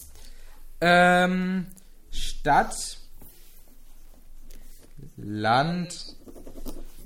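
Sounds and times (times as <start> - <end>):
speech: 0.8 - 1.8, 2.4 - 3.0, 5.2 - 6.2
pen scratching across paper: 5.9 - 7.0.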